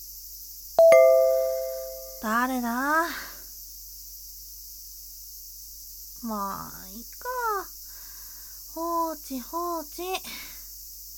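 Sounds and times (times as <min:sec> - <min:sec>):
bright two-tone doorbell chime: 0:00.8 - 0:02.3
speech: 0:02.2 - 0:03.3, 0:06.2 - 0:07.7, 0:08.8 - 0:10.5.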